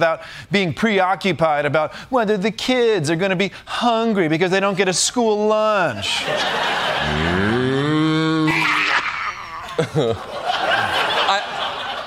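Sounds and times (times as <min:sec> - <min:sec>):
speech: 0:00.0 - 0:07.5, 0:09.8 - 0:10.4
laughter: 0:06.2 - 0:12.0
choppy breathy vocal bursts: 0:06.9 - 0:09.6
cow mooing in distress: 0:07.0 - 0:09.0.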